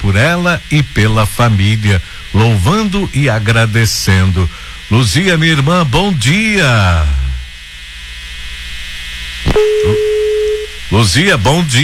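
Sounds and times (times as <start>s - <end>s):
low hiss: 0.0s - 11.8s
speech: 0.1s - 7.2s, 10.9s - 11.8s
telephone tone from a failed phone call: 9.5s - 10.8s.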